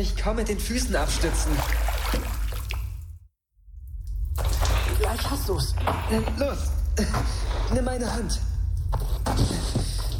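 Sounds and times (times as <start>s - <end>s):
speech: 0.0s - 2.4s, 5.2s - 8.5s, 9.2s - 10.0s
low watery rumble around stones: 0.4s - 5.8s
water splashing and dripping around slippery stones: 1.0s - 5.4s.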